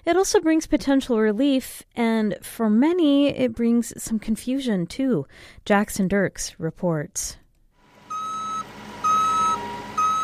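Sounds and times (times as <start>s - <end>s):
speech: 0.0s - 7.4s
cargo truck reversing alarm beeps: 8.1s - 10.2s.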